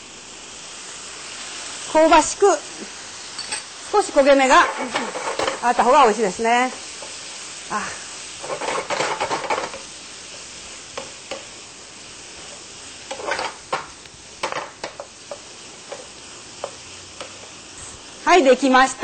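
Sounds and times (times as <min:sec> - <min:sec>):
soy sauce sizzling as it is poured around the side of a hot pan: 0:00.0 - 0:19.0
speech: 0:01.9 - 0:03.0, 0:03.9 - 0:06.8, 0:07.7 - 0:08.6, 0:18.3 - 0:19.0
sharp stirring clicks against the pan: 0:08.5 - 0:11.5, 0:13.1 - 0:17.6.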